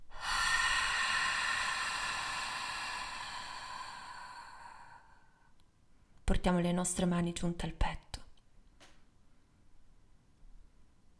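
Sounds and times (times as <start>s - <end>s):
deep inhale and exhale through the mouth during a guided breathing exercise: 0.0s - 5.4s
speech: 6.3s - 8.0s.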